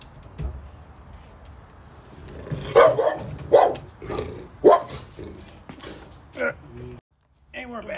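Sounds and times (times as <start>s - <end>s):
dog barking: 2.7s - 3.9s, 4.6s - 5.0s.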